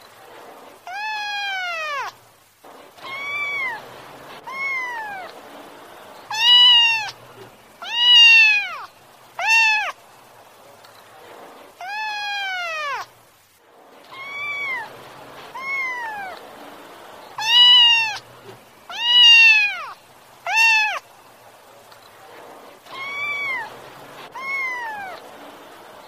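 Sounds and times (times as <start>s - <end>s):
kitten crying: 0.8s - 2.2s, 3.0s - 5.4s, 6.3s - 7.2s, 7.8s - 10.0s, 11.8s - 13.1s, 14.1s - 14.9s, 15.5s - 16.4s, 17.4s - 18.2s, 18.9s - 21.0s, 22.9s - 25.2s.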